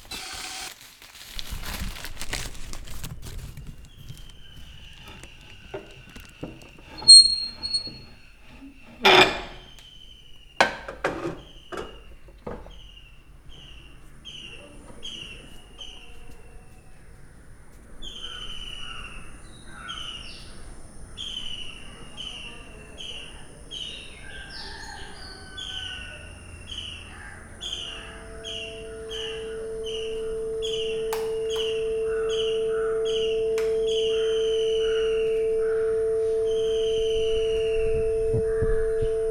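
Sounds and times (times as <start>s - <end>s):
birds calling in a forest in south India: 3.2s - 39.2s.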